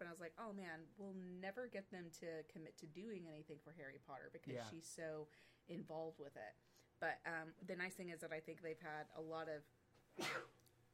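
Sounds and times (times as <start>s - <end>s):
speech: 0.0s - 10.5s
single sharp sneeze: 10.2s - 10.6s.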